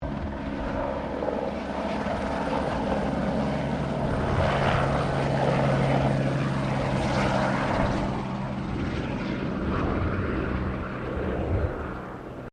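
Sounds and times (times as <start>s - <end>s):
Bell 204 firefighting helicopter passing: 0.0s - 12.5s.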